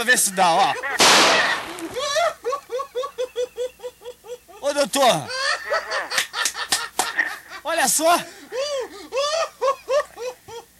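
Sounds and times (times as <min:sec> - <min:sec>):
speech: 0:00.0 - 0:02.4, 0:04.7 - 0:05.4, 0:07.7 - 0:08.4
rhythmic cackling laughter: 0:00.3 - 0:07.6, 0:08.6 - 0:10.7
gunshot: 0:01.0 - 0:02.0.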